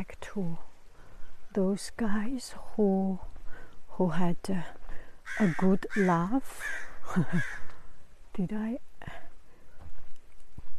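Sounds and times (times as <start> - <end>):
speech: 0.0 - 0.7, 1.5 - 3.3, 4.0 - 7.6, 8.4 - 9.2
crow cawing in its nesting territory: 5.2 - 7.8.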